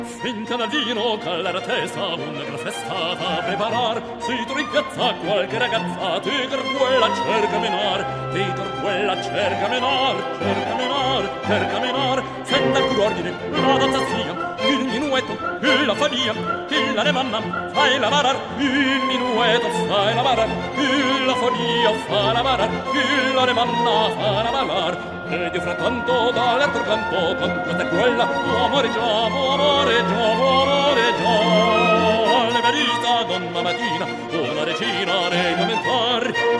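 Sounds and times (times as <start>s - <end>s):
person singing: 0.1s - 36.5s.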